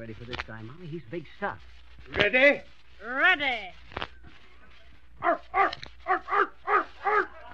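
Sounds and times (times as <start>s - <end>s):
speech: 0.0s - 4.4s, 5.2s - 5.8s
man imitating an Airedale dog barking: 5.3s - 7.5s.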